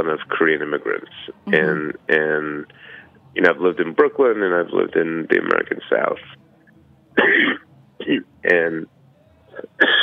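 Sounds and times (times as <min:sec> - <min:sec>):
speech: 0:00.0 - 0:06.4, 0:07.2 - 0:09.0, 0:09.6 - 0:10.0
short quiet intake of breath: 0:02.7 - 0:03.2
person sneezing: 0:07.2 - 0:07.6, 0:09.8 - 0:10.0.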